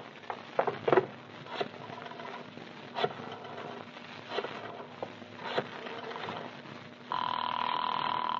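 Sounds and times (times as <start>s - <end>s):
crackly hissing telephone line: 0.0s - 8.3s
telephone ringing unanswered: 7.1s - 8.3s.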